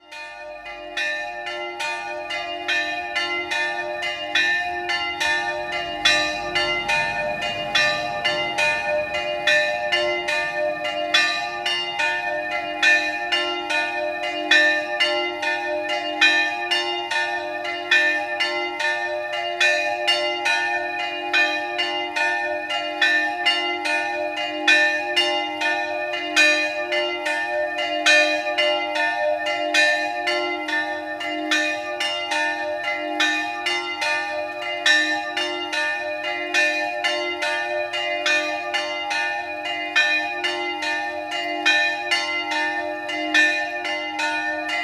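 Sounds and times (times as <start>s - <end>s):
bells: 0.0s - 44.8s.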